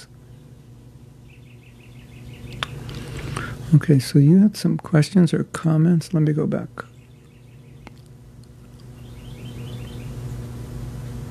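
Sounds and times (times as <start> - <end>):
birds chirping outside an open door: 0.0 - 3.7, 6.7 - 10.6
steady low hum of noise: 0.0 - 11.2
speech: 3.7 - 6.9.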